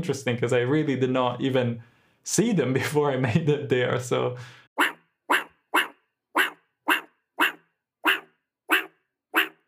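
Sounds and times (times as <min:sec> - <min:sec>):
speech: 0:00.0 - 0:04.9
meerkat barking from inside a burrow hole: 0:04.8 - 0:09.6.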